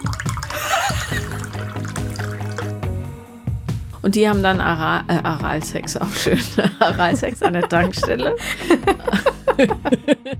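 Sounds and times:
herbal liqueur glugging and splashing into a glass: 0.0s - 2.9s
laughter: 0.5s - 1.4s, 6.2s - 10.3s
speech: 4.0s - 9.0s, 9.6s - 10.3s.

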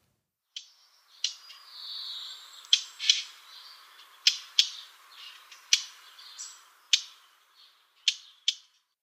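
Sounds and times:
faint twittering song of a blackcap: 0.5s - 9.0s
blackcap tacking calls: 0.6s - 8.7s.

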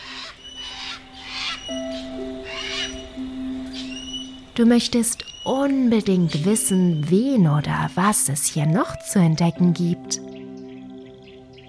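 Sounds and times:
parrots squawking in a jungle: 0.0s - 4.4s
speech: 4.6s - 10.4s.

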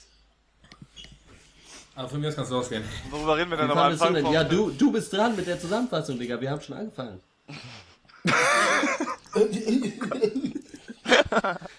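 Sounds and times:
speech: 2.0s - 8.7s, 9.4s - 10.6s, 11.3s - 11.7s
person coughing raspily: 7.5s - 10.7s
laughter: 8.2s - 11.7s.

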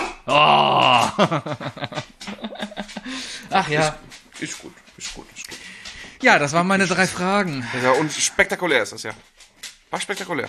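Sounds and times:
person imitating a barking dog: 0.0s - 1.2s
speech: 0.3s - 0.6s, 1.2s - 2.0s, 3.1s - 5.2s, 6.2s - 9.3s, 9.9s - 10.4s
laughter: 0.7s - 3.6s.

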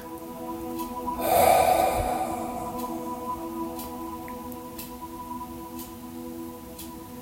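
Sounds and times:
deep audible exhale during a guided breathing exercise: 1.1s - 3.9s
soft steady tonal drone: 1.1s - 4.4s.

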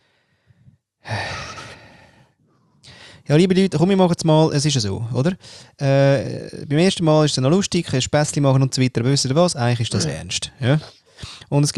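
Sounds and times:
loud deliberate breaths: 0.0s - 3.3s, 5.4s - 5.8s
speech: 3.3s - 11.7s.

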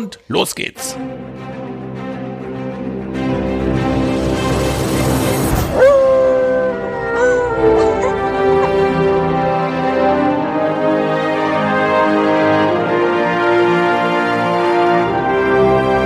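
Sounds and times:
speech: 0.0s - 1.3s
sustained instrumental music: 0.3s - 16.0s
dog howling: 5.7s - 9.0s.

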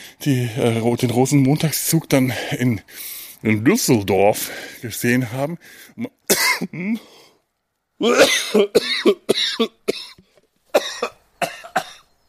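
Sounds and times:
speech: 0.2s - 7.2s, 8.0s - 10.1s
person coughing in sharp irregular bursts: 6.3s - 7.1s, 8.0s - 10.2s, 10.8s - 12.1s
raspy throat clearing: 6.3s - 7.1s, 8.0s - 10.2s, 10.8s - 12.1s.

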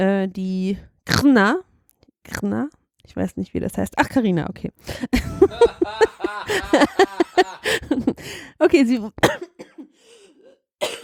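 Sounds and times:
speech: 0.0s - 9.6s
laughter: 5.1s - 8.4s
wheezy throaty breathing: 7.4s - 8.6s, 9.9s - 10.6s
person coughing raspily: 9.2s - 10.0s, 10.8s - 11.0s.

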